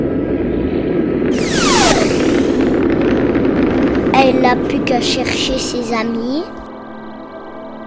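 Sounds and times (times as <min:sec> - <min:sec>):
rocket taking off from a lab: 0:00.1 - 0:06.7
sharp bright whoosh with downward-sweeping pitch: 0:01.3 - 0:02.8
speech: 0:04.9 - 0:06.6.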